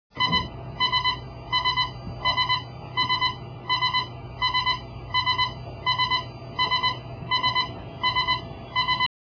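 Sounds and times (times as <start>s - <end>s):
aircraft cockpit warning alarm: 0.1s - 9.1s.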